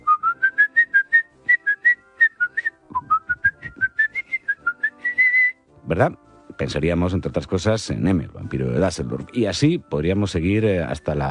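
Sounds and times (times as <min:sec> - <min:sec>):
person whistling a brisk film tune: 0:00.0 - 0:05.7
speech: 0:05.9 - 0:11.2.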